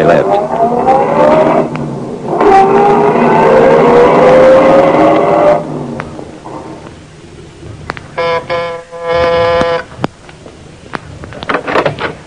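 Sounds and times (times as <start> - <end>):
car engine revving as it pulls away: 0.0 - 10.2
short buzzing tone: 8.2 - 9.9.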